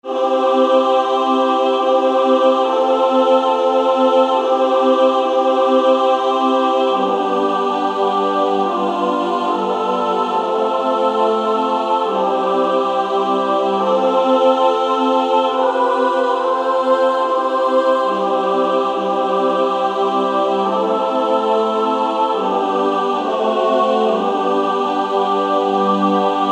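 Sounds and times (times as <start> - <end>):
SSAA female choir singing: 0.0 - 26.5.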